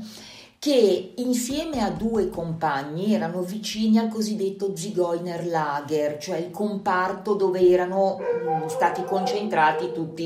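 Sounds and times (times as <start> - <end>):
speech: 0.6 - 10.2
dog barking: 8.1 - 10.2.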